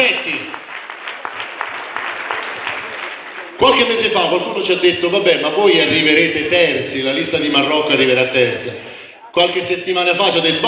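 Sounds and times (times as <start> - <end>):
crowd applauding at a political campaign gathering: 0.0 - 4.5
speech: 3.6 - 10.6.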